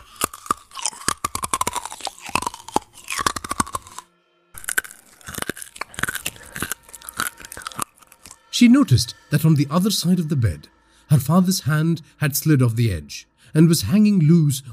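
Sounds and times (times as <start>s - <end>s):
loud crunching: 0.0s - 8.4s
speech: 8.6s - 14.7s.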